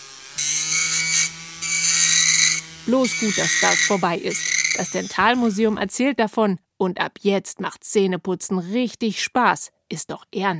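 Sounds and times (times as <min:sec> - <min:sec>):
dentist's drill whining: 0:00.0 - 0:05.8
speech: 0:02.9 - 0:10.5.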